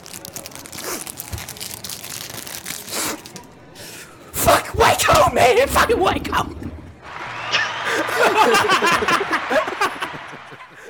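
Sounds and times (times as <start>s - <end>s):
crinkly pack being ripped open: 0.0s - 3.6s
speech: 5.0s - 6.6s, 8.2s - 9.7s
laughter: 7.0s - 10.8s.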